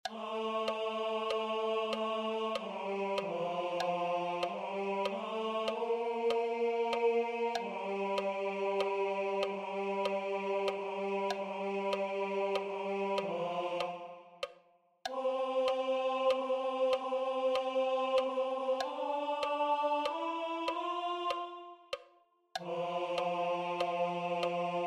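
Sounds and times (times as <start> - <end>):
tenors singing: 0.0 - 24.8.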